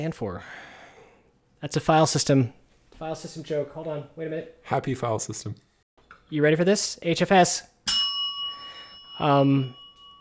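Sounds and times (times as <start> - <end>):
speech: 0.0 - 0.7, 1.6 - 5.7, 6.3 - 8.0, 9.2 - 9.8
bright metallic bell ding: 7.9 - 10.1.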